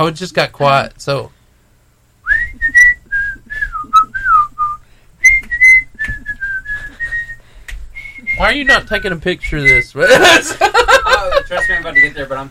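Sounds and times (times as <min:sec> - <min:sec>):
speech: 0:00.0 - 0:01.4, 0:08.4 - 0:12.4
person whistling a short melodic tune: 0:02.2 - 0:07.4, 0:08.0 - 0:09.9
laughter: 0:10.0 - 0:12.2.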